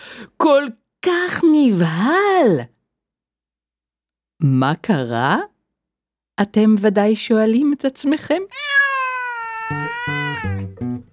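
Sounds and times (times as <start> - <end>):
speech: 0.2 - 2.7, 4.4 - 5.5, 6.4 - 8.8, 9.7 - 10.0
cat meowing: 8.5 - 10.7.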